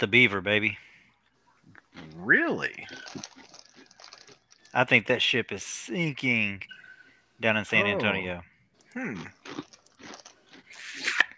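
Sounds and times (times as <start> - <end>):
speech: 0.0 - 1.0, 2.0 - 3.6, 4.7 - 6.8, 7.4 - 10.2
crunching Cheetos being chewed: 1.8 - 5.0, 8.8 - 11.3.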